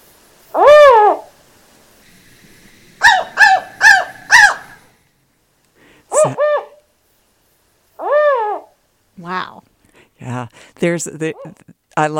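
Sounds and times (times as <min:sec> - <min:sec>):
California spotted owl hooting: 0:00.5 - 0:01.4, 0:03.0 - 0:04.9, 0:06.1 - 0:06.9, 0:08.0 - 0:09.5
speech: 0:10.8 - 0:12.1.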